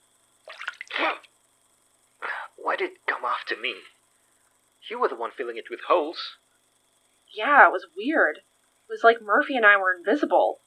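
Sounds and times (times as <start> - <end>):
water poured to clean a bleeding wound: 0.5 - 1.2
speech: 1.0 - 1.3, 2.6 - 4.0, 4.8 - 6.4, 7.3 - 10.6.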